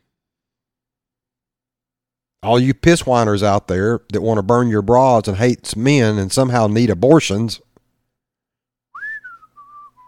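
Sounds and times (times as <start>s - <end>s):
speech: 2.4s - 7.7s
person whistling a short phrase: 8.9s - 10.0s.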